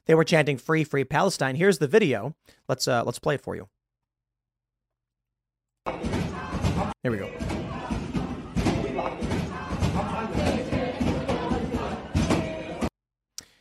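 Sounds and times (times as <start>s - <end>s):
speech: 0.1s - 3.8s, 7.0s - 7.4s
many people pounding on a library door: 5.9s - 12.9s.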